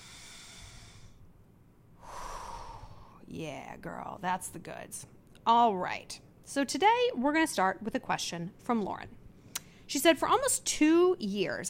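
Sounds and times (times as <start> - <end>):
deep breath during a guided breathing exercise: 0.0 - 1.3, 2.0 - 3.2
speech: 3.3 - 9.2, 9.9 - 11.6.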